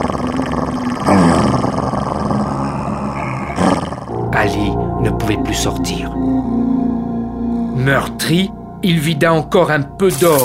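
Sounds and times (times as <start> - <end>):
large dog growling angrily with harsh snarling: 0.0 - 4.3
speech: 4.4 - 6.5, 7.8 - 10.4.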